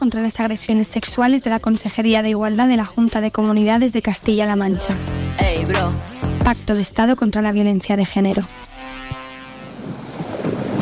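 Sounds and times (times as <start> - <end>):
speech: 0.0 - 9.2
ocean waves: 9.0 - 10.8.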